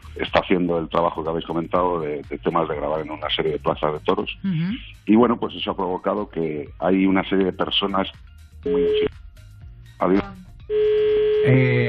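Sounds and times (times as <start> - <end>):
voice fragment: 0.0 - 8.0, 10.0 - 10.4, 11.5 - 11.8
speech: 0.2 - 9.2, 10.0 - 11.8
buzzy telephone line tone from incoming call: 8.7 - 9.1, 10.6 - 11.8.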